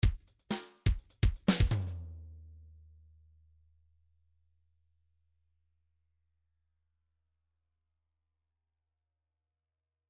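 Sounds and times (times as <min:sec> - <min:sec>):
pop drum fill from a MIDI file: 0:00.9 - 0:02.0.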